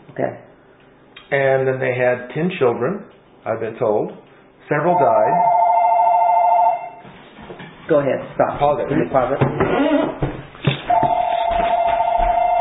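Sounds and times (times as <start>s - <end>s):
speech: 0.2s - 0.5s, 1.3s - 5.6s, 7.9s - 10.3s
telephone ringing with an electronic tone: 4.9s - 7.0s, 10.9s - 12.5s.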